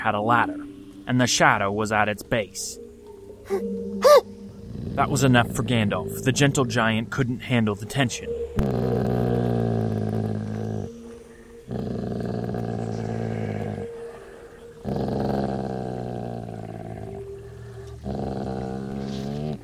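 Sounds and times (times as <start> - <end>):
speech: 0.0 - 2.8, 3.5 - 9.1
large dog growling and barking: 3.6 - 5.7, 8.6 - 11.0, 11.6 - 19.6.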